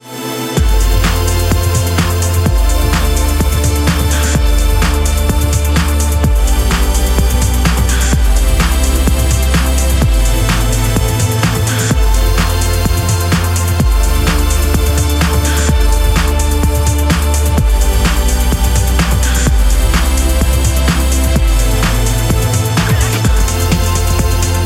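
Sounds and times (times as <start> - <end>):
string beat: 0.0 - 24.6.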